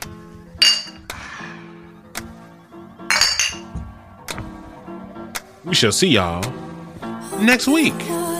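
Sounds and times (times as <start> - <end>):
glasses clinking together in a toast: 0.6 - 1.1, 3.1 - 3.7
speech: 5.7 - 6.6, 7.4 - 8.2.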